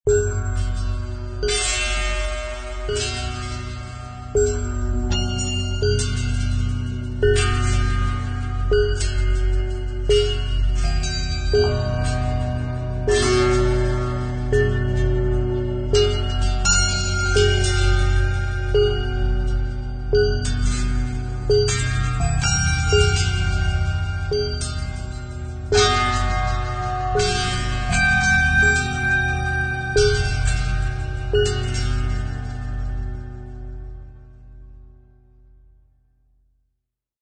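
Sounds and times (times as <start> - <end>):
apocalyptic musical tortured string sound: 0.1 - 34.2.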